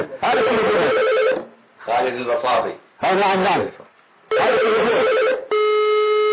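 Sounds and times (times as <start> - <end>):
loud electronic phone ringback tone during an outgoing call: 0.4 - 1.4, 4.3 - 6.3
speech: 1.9 - 5.3.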